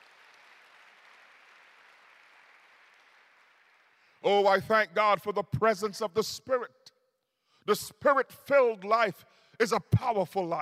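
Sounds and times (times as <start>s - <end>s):
crowd applauding: 0.0s - 4.2s
speech: 4.2s - 6.8s, 7.7s - 10.5s.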